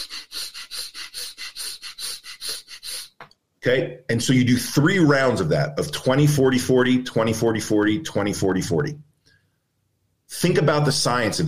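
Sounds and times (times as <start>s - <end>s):
rapid rhythmic breathing from a breathing exercise of short small-circle breaths: 0.0s - 3.2s
speech: 3.6s - 9.1s, 10.4s - 11.4s.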